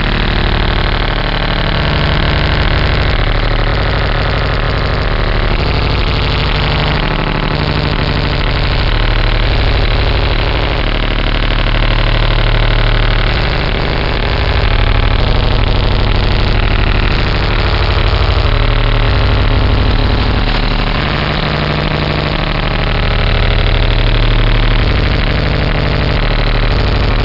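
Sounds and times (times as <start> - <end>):
big Russian radar signal: 0.0 - 27.2.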